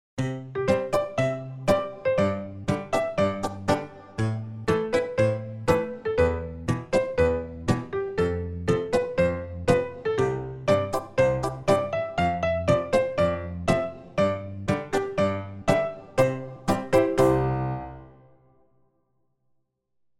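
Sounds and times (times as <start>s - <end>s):
cute cheerful cartoon background music: 0.2s - 18.6s.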